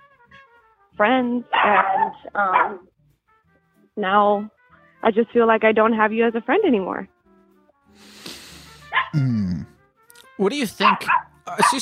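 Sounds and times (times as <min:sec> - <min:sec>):
speech: 0:01.0 - 0:03.0, 0:04.0 - 0:07.1, 0:07.9 - 0:08.2, 0:09.1 - 0:09.7, 0:10.4 - 0:11.7
puppy yipping and whining: 0:10.8 - 0:11.7.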